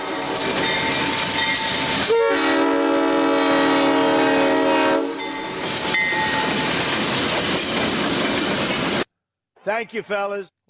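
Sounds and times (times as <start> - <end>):
train passing with rolling rail clatter: 0.0 - 9.1
loud sustained train horn blast: 2.0 - 5.3
speech: 9.7 - 10.6.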